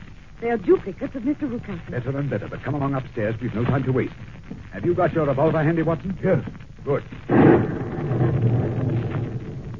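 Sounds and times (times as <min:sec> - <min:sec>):
speech: 0:00.4 - 0:07.8
thunder crash from a nearby lightning strike: 0:07.3 - 0:09.7.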